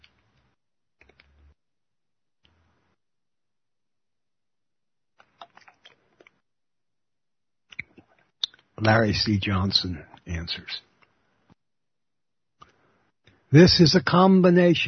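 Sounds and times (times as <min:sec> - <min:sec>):
person slurping and swallowing a drink: 0:05.2 - 0:06.3
speech: 0:08.8 - 0:10.9, 0:13.5 - 0:14.8.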